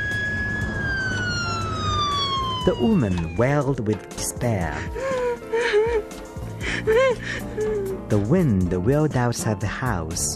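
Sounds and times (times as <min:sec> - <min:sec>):
low rumble of road traffic: 0:00.0 - 0:04.0
emergency vehicle siren wailing: 0:00.0 - 0:07.7
speech: 0:02.6 - 0:05.1, 0:06.8 - 0:10.3.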